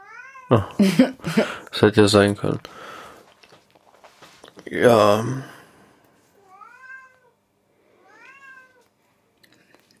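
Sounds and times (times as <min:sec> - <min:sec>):
cat meowing: 0:00.0 - 0:00.6, 0:06.4 - 0:07.4, 0:08.0 - 0:08.9
speech: 0:00.5 - 0:02.9, 0:04.7 - 0:05.6
laughter: 0:00.6 - 0:01.7.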